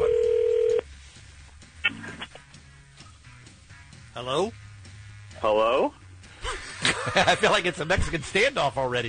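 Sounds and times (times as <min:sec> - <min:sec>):
electronic telephone dialing tones: 0:00.0 - 0:00.8
low telephone line hum: 0:00.0 - 0:08.0
speech: 0:04.2 - 0:04.6, 0:05.4 - 0:06.0, 0:07.0 - 0:09.0
laughter: 0:06.4 - 0:08.6.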